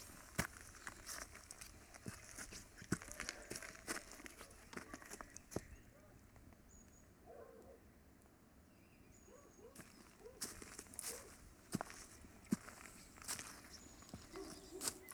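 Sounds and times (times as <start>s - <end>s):
footsteps on loose stones of a stony climbing path: 0.0s - 5.8s, 9.8s - 15.1s
soft outdoor noise: 0.0s - 15.1s.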